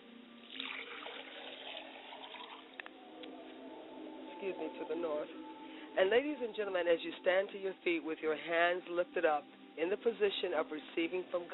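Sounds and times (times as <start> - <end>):
liquid poured out as a libation: 0.4 - 2.8
liquid dripping: 0.4 - 3.4
speech: 4.4 - 11.5.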